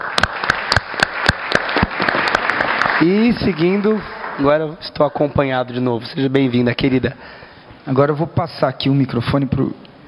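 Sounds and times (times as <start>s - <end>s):
audience applause at a public event: 0.0s - 5.1s
speech: 3.0s - 10.0s.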